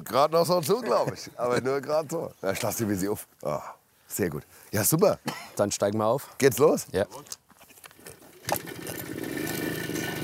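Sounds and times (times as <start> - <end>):
speech: 0.0 - 7.4
motorcycle engine starting and running: 8.4 - 10.2.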